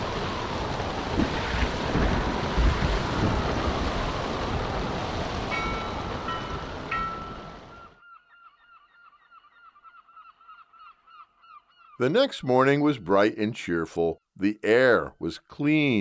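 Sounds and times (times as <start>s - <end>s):
ocean waves crashing on Matinicus Island: 0.0s - 8.0s
storm wind gusting on Matinicus Island: 0.0s - 8.0s
speech: 12.0s - 15.9s.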